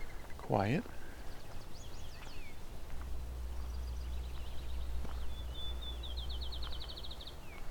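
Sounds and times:
field sparrow singing softly: 0:00.0 - 0:02.6, 0:03.6 - 0:07.6
speech: 0:00.5 - 0:01.0
low rumble: 0:01.0 - 0:07.6.

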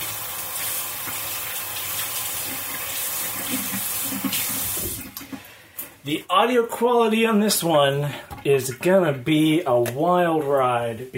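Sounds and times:
running tap water rinsing a diced red bell pepper in a sink: 0:00.0 - 0:05.6
speech: 0:06.1 - 0:11.1.

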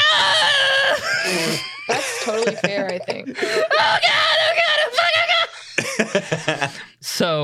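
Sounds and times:
man screaming in panic: 0:00.0 - 0:01.4, 0:03.6 - 0:05.6
laughter: 0:00.5 - 0:04.2, 0:05.2 - 0:06.9
speech: 0:02.3 - 0:03.6.

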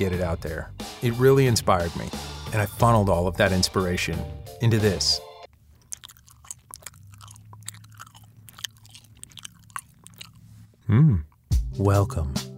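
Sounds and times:
speech: 0:00.0 - 0:05.3, 0:10.9 - 0:12.4
chewing gum being worked in the mouth: 0:05.5 - 0:11.5.

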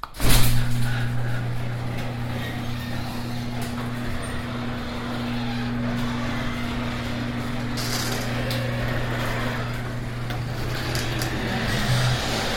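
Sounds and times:
garage door rolling open with mechanical hum and grinding rattle: 0:00.0 - 0:12.5
faint creaks of squeaky hinges: 0:00.8 - 0:12.2.

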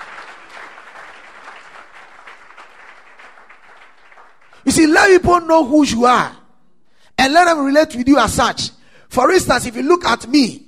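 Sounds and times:
audience applause: 0:00.0 - 0:04.6
speech: 0:04.6 - 0:06.4, 0:07.2 - 0:10.6.

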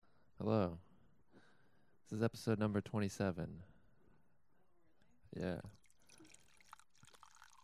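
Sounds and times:
speech: 0:00.4 - 0:00.9, 0:02.1 - 0:03.7, 0:05.3 - 0:05.8
wine pouring into a glass: 0:05.4 - 0:07.6
wine dripping: 0:05.5 - 0:07.6.

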